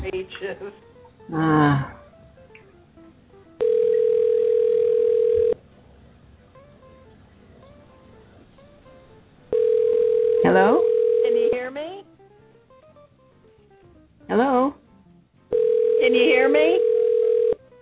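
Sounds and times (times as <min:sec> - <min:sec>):
speech: 0:00.0 - 0:02.0
ringback tone of an outgoing telephone call over a narrow phone line: 0:03.5 - 0:05.6, 0:09.5 - 0:11.7, 0:15.5 - 0:17.8.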